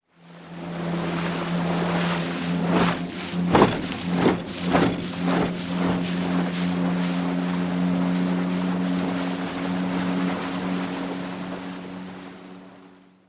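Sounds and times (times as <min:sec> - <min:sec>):
motorboat going against the current: 0:00.0 - 0:13.2.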